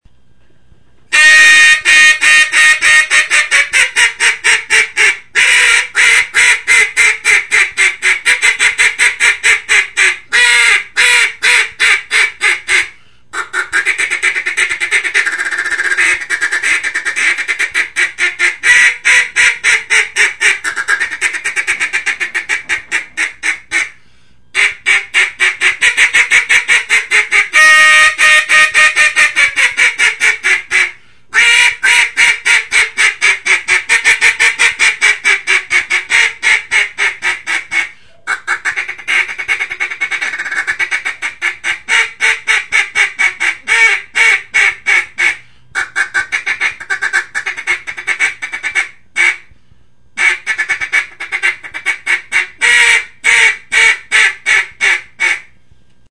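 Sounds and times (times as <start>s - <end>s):
molded single reed mallard duck call: 1.1s - 24.0s, 24.6s - 49.5s, 50.2s - 55.6s.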